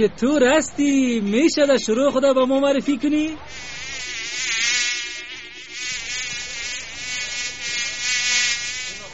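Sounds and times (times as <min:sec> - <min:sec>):
speech: 0:00.0 - 0:04.6
fly buzzing at a garbage dumpster: 0:03.5 - 0:09.1.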